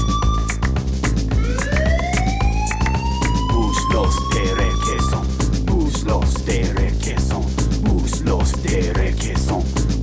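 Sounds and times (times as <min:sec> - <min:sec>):
wailing siren: 0:00.0 - 0:00.7, 0:01.4 - 0:05.4
thumping low beat: 0:00.0 - 0:10.0.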